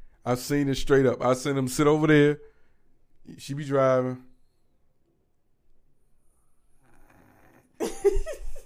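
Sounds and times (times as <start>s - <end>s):
speech: 0.2s - 2.5s, 3.2s - 4.3s
person making a raspy snoring noise with their voice: 6.8s - 7.8s.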